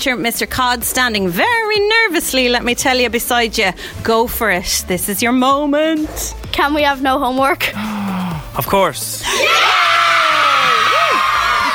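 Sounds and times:
speech: 0.0 - 8.0, 8.6 - 9.8
children screaming at a school: 9.2 - 11.7.

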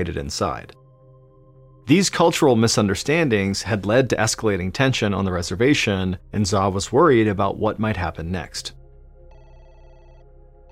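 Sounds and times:
speech: 0.0 - 0.8, 1.9 - 8.8
telephone ringing with a bright electronic tone: 9.3 - 10.6.

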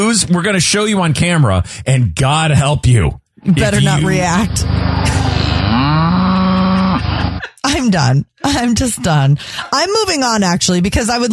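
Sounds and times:
speech: 0.1 - 6.2, 7.7 - 11.3
laughter: 3.5 - 9.3
cow mooing: 3.6 - 7.3.

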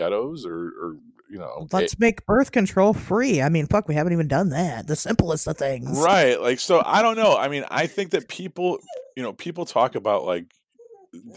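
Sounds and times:
speech: 0.0 - 11.3
dog whining: 8.7 - 9.3, 10.8 - 11.3.

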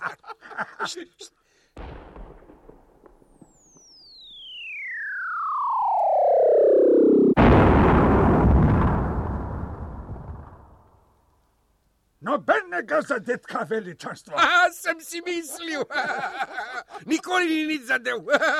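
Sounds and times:
laughter: 0.0 - 1.4, 15.3 - 17.4, 18.1 - 18.5
speech: 0.9 - 1.4, 13.0 - 18.5
cannon shell explosion: 1.8 - 3.6, 7.3 - 11.1
flying cannon shell whistling: 3.3 - 6.7.

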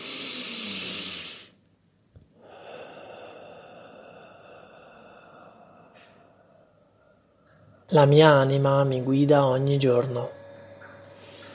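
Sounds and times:
deep breath in and out: 0.0 - 1.6, 2.3 - 7.8
speech: 7.9 - 10.4.

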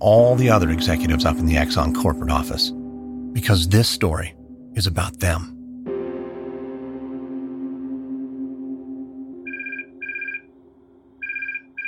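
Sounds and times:
speech: 0.0 - 2.8, 3.4 - 5.6
telephone ringing in short bright double bursts: 9.4 - 10.5, 11.2 - 11.8.

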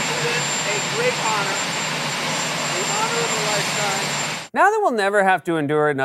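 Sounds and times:
helicopter turbine engine running: 0.0 - 4.5
helicopter turbine high-pitched whine: 0.0 - 4.5
speech: 1.0 - 1.9, 3.6 - 6.0.

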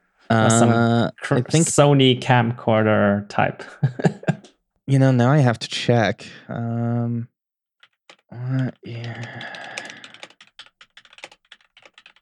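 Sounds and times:
speech: 0.3 - 7.3, 8.3 - 9.7
laughter: 3.6 - 4.5
keys clacking on a computer keyboard with new key switches: 7.8 - 12.1.

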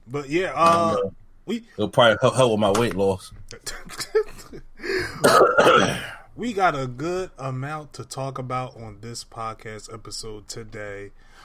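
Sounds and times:
speech: 0.1 - 11.3
man clearing throat and coughing: 5.1 - 6.3.

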